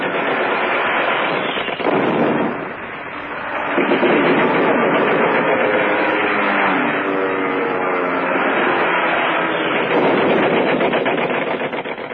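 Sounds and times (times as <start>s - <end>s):
rapid gunfire: 0.0s - 2.8s, 3.7s - 6.7s, 8.5s - 12.1s
explosions: 0.0s - 7.4s, 8.2s - 12.1s
German Stuka dive bomber engine roaring and whining in a dive: 0.0s - 12.1s.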